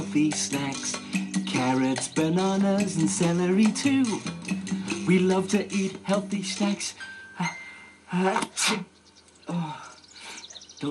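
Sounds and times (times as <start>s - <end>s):
speech: 0.2s - 8.9s, 9.5s - 9.8s
person sneezing: 8.4s - 8.9s.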